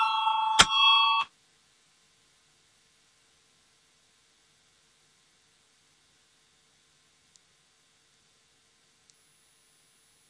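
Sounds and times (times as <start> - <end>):
parliament voting call bell ringing with an electronic tone: 0.0 - 1.3.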